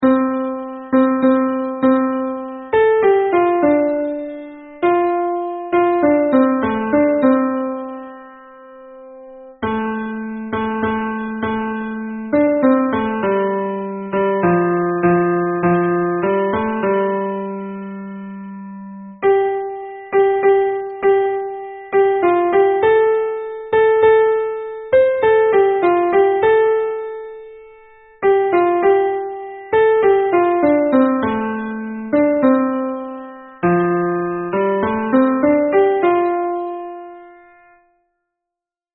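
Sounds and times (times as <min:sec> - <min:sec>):
piano in F major: 0:00.0 - 0:38.2.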